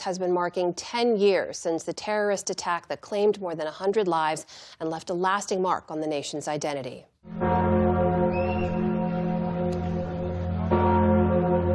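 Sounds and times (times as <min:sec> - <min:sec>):
speech: 0:00.0 - 0:07.7
deep bells of a cathedral ringing at night: 0:07.3 - 0:11.7.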